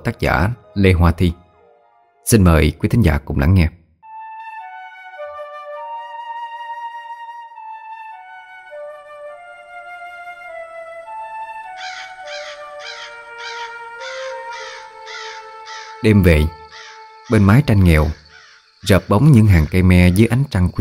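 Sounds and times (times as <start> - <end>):
speech: 0.0 - 1.4, 2.2 - 3.8, 16.0 - 16.6, 17.3 - 18.2, 18.8 - 20.7
crows cawing outside in a yard at night: 11.7 - 20.3.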